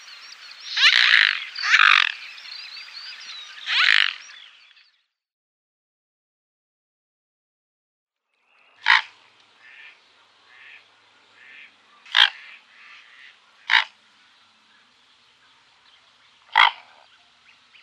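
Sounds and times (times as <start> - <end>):
Mute swan harsh calls: 0.0 - 4.4, 8.8 - 10.8, 11.4 - 14.0, 16.5 - 17.0.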